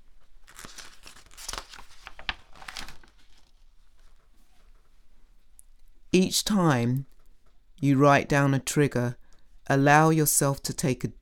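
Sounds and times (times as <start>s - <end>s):
paper page being turned: 0.2s - 4.2s
speech: 6.2s - 7.1s, 7.8s - 11.2s.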